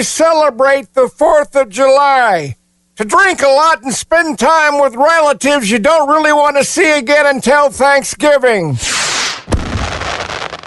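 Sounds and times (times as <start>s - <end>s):
speech: 0.0s - 9.3s
4th of July firework rushing hiss: 8.8s - 10.6s.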